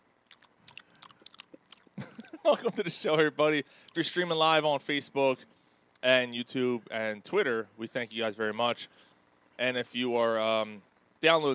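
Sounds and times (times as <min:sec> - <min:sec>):
chewing pepperoni and cheese: 0:00.2 - 0:02.7, 0:03.8 - 0:04.0
mouth clicks: 0:00.3 - 0:02.4
speech: 0:02.4 - 0:11.5.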